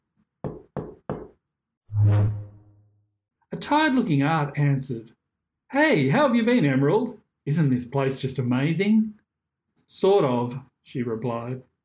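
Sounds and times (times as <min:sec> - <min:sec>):
firm knocks on a wooden door: 0:00.4 - 0:01.4
speech: 0:03.6 - 0:09.2, 0:09.9 - 0:11.7.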